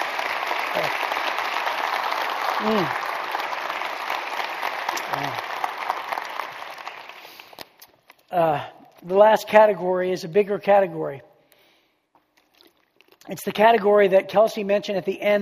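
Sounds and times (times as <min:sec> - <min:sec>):
audience applause: 0:00.0 - 0:07.8
speech: 0:02.6 - 0:03.1, 0:08.3 - 0:11.3, 0:13.3 - 0:15.3.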